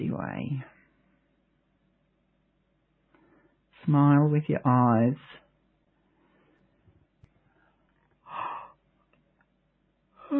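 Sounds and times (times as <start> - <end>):
speech: 0.1 - 0.8, 3.8 - 5.4
person yawning: 8.3 - 8.8.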